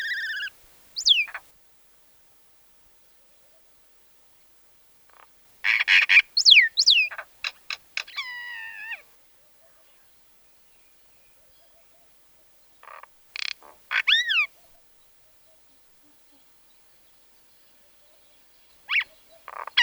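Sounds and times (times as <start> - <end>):
myna calling with buzzy rasps and downslurred whistles: 0.0 - 1.5, 5.1 - 10.0, 12.8 - 14.9, 18.9 - 19.8.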